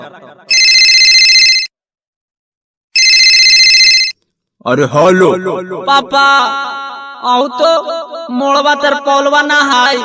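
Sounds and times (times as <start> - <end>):
speech: 0.0 - 0.6, 4.6 - 10.0
phone ringing during an outgoing call with a bright warbling tone: 0.5 - 1.8, 3.0 - 4.3.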